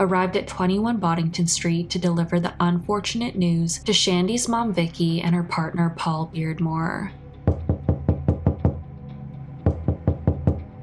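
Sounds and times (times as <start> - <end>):
speech: 0.0 - 7.2
police officers pounding heavily on a house door: 7.5 - 8.8, 9.6 - 10.7.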